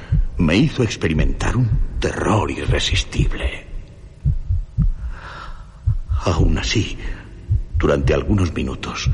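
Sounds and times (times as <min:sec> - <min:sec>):
deep heartbeat thumping in slow paired beats: 0:00.0 - 0:00.4, 0:01.2 - 0:03.4, 0:04.2 - 0:05.2, 0:05.8 - 0:06.7, 0:07.4 - 0:09.1
faint hum: 0:00.0 - 0:09.1
speech: 0:00.4 - 0:03.6, 0:06.2 - 0:07.2, 0:07.8 - 0:09.1.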